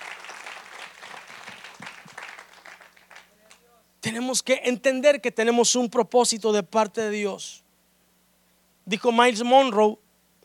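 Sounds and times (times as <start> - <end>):
audience applauding: 0.0 - 3.7
speech: 4.0 - 7.6, 8.9 - 10.0.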